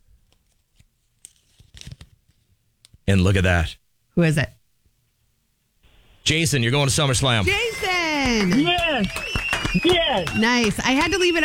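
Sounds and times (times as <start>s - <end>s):
folded paper slips rustling and crinkling: 0.3s - 2.5s
speech: 3.1s - 4.6s, 6.3s - 11.4s.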